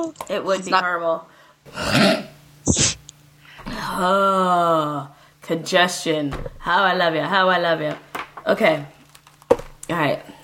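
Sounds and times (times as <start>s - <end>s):
speech: 0.0s - 3.0s, 3.8s - 10.3s
person clearing throat to get rid of a tickle: 1.7s - 3.0s.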